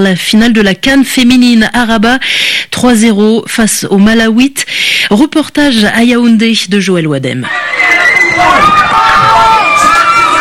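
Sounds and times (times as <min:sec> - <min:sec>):
speech: 0:00.0 - 0:08.8
excited yells rising above the crowd: 0:07.4 - 0:10.3
dense crowd shouting and cheering joyfully at final whistle: 0:07.5 - 0:10.3.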